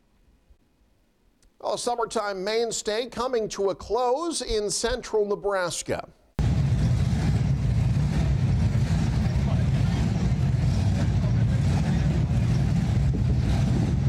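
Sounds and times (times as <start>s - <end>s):
speech: 1.7s - 6.2s
classic hot rod engines rumbling and revving: 6.4s - 14.0s
faint murmur: 8.7s - 13.1s.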